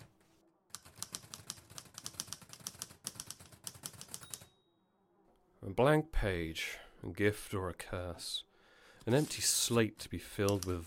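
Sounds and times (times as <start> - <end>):
typewriter keystrokes clacking: 0.8 - 4.5, 10.4 - 10.8
speech: 5.6 - 10.8.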